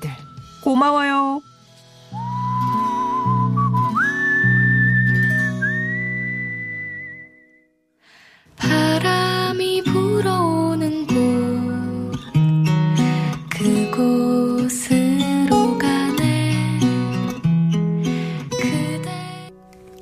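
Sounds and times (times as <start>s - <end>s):
speech: 0.0s - 1.5s
acoustic pop song by an acoustic duo: 0.0s - 7.5s, 8.2s - 20.0s
whistled melody: 0.0s - 7.8s.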